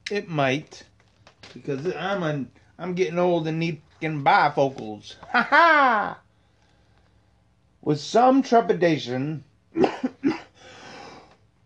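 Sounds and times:
speech: 0:00.1 - 0:00.9, 0:01.5 - 0:06.2, 0:07.8 - 0:10.1
sharp coughs: 0:09.8 - 0:10.6
raspy wheezy exhale: 0:10.6 - 0:11.4.

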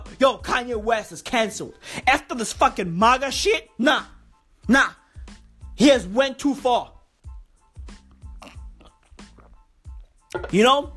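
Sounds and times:
speech: 0:00.2 - 0:05.0, 0:05.8 - 0:07.0, 0:10.3 - 0:10.9
person slurping a hot drink: 0:08.0 - 0:10.2
swallowing: 0:08.0 - 0:10.2.

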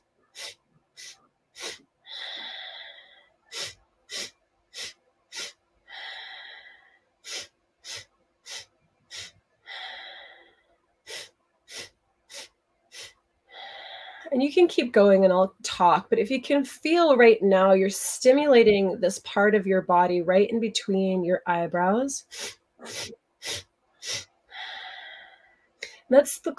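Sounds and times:
short sharp nasal inhale strokes in a Kundalini yoga exercise: 0:00.3 - 0:14.3, 0:22.3 - 0:26.0
longer exhale in a Kundalini yoga exercise: 0:00.4 - 0:14.3, 0:22.4 - 0:25.6
speech: 0:14.3 - 0:23.2, 0:26.1 - 0:26.5.

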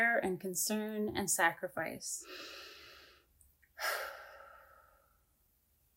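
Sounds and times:
speech: 0:00.0 - 0:02.7
long deep inhalation and strong airy exhale: 0:02.2 - 0:05.4.

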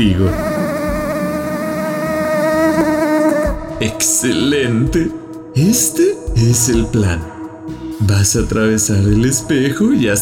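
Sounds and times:
speech: 0:00.0 - 0:00.5, 0:03.8 - 0:07.3, 0:08.0 - 0:10.2
mosquito buzzing near the ear: 0:00.0 - 0:04.0.

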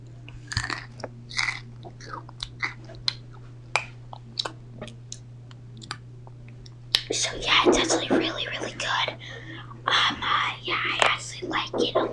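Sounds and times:
low steady hum: 0:00.0 - 0:12.1
crackers being crunched and chewed: 0:00.4 - 0:04.5
speech: 0:07.1 - 0:09.2.

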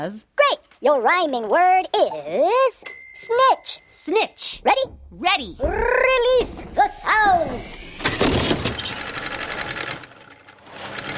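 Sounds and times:
speech: 0:00.0 - 0:09.0
sewing machine stitching with repeated needle strokes: 0:07.6 - 0:11.1.

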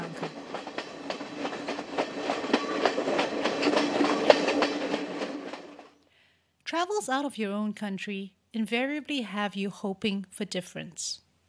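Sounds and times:
train wheels clacking over rail joints: 0:00.0 - 0:05.9
speech: 0:07.0 - 0:11.2.

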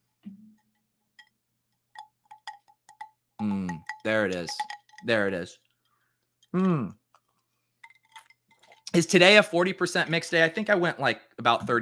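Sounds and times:
glasses clinking together: 0:01.9 - 0:05.5, 0:07.8 - 0:09.1
speech: 0:03.4 - 0:05.6, 0:06.5 - 0:07.0, 0:09.0 - 0:11.8.

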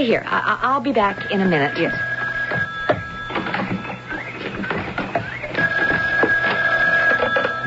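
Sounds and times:
speech: 0:00.0 - 0:02.7
telephone ringing: 0:00.0 - 0:07.6
clattering and bumping noises: 0:02.3 - 0:07.6.

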